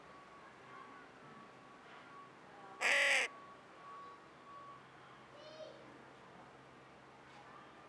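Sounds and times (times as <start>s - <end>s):
carrion crow Corvus corone cawing: 2.8s - 3.3s.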